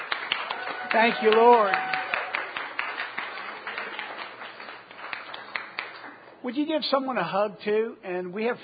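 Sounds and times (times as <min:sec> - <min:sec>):
church audience clapping hands: 0:00.0 - 0:06.4
speech: 0:00.9 - 0:01.9, 0:06.4 - 0:08.6.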